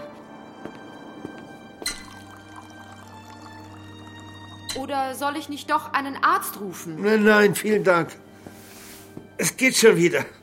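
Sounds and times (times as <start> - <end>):
water dripping: 0.7 - 5.7
water pouring into a drinking glass: 1.6 - 5.5
drinking glass clinking: 1.8 - 4.9
speech: 4.8 - 8.2, 9.4 - 10.4.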